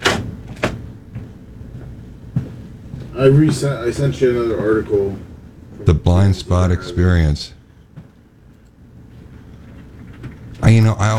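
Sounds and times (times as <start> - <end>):
door swinging shut: 0.0 - 0.8
speech: 3.2 - 7.6, 10.7 - 11.1.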